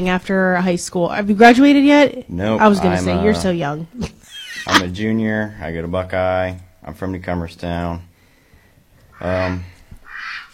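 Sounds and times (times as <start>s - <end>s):
speech: 0.0s - 8.1s, 9.2s - 9.7s
live duck quacking in a studio: 4.6s - 4.9s, 9.1s - 10.5s.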